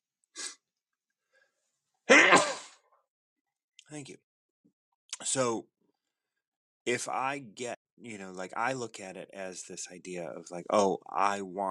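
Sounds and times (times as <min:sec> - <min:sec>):
sneeze: 0:02.1 - 0:02.8
speech: 0:03.9 - 0:04.3, 0:05.2 - 0:05.7, 0:06.9 - 0:11.6.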